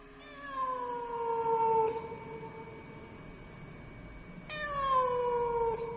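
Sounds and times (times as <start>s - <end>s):
cat yowling as it is chased out through a window at night: 0.2s - 2.3s, 4.5s - 5.9s.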